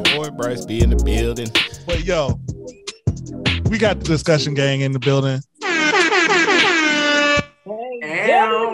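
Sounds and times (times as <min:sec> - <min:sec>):
speech: 0:00.1 - 0:02.4, 0:03.7 - 0:05.5
loud blaring air horn blasts: 0:05.6 - 0:07.5.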